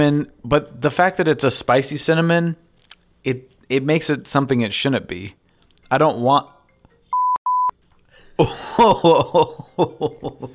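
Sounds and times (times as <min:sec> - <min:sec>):
speech: 0:00.0 - 0:02.6, 0:03.2 - 0:06.6, 0:08.4 - 0:10.5
phone notification electronic beeps: 0:07.1 - 0:07.7
person chuckling: 0:08.4 - 0:10.5.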